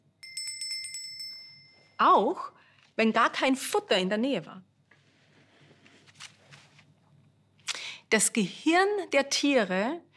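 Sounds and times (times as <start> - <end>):
small bell struck in rapid rings: 0.1 - 2.1
speech: 2.0 - 4.7, 8.1 - 10.1.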